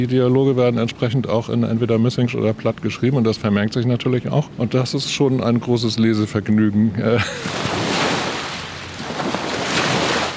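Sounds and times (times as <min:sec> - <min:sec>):
speech: 0:00.0 - 0:07.8
laughter: 0:07.1 - 0:07.7
waves lapping against a beach on the Elbe river: 0:07.3 - 0:10.3.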